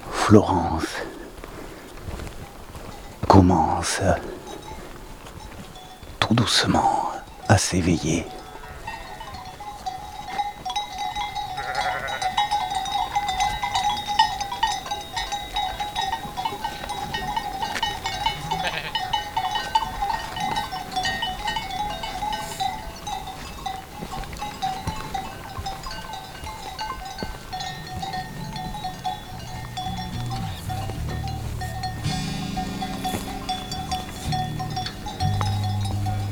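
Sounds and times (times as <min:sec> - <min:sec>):
speech: 0:00.3 - 0:01.1, 0:03.4 - 0:04.4, 0:06.3 - 0:08.4
steady jangle of sheep bells: 0:02.1 - 0:36.3
flock of ewes bleating: 0:06.3 - 0:25.2, 0:27.3 - 0:36.3.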